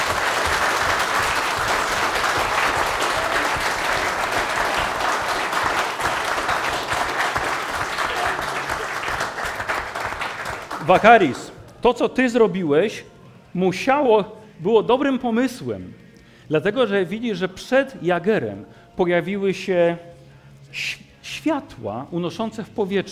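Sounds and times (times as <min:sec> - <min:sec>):
crowd applause: 0:00.0 - 0:11.6
speech: 0:10.9 - 0:20.1, 0:20.7 - 0:23.1.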